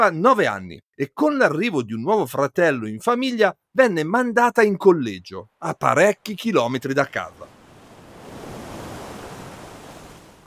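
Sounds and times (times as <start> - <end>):
speech: 0.0 - 7.5
wave washing onto a shore of the English Channel: 7.2 - 10.4.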